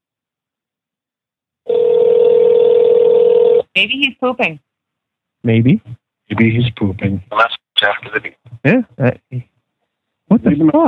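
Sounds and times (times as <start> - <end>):
telephone ringing tone played through a phone: 1.7 - 3.7
speech: 3.8 - 4.6, 5.4 - 9.5, 10.3 - 10.8.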